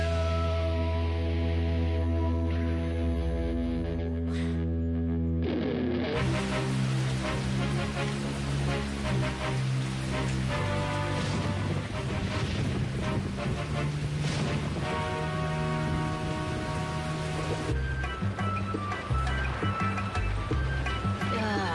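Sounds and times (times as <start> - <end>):
music with sustained tones: 0.0 - 21.7
steady rain pattering on a surface: 6.1 - 21.7.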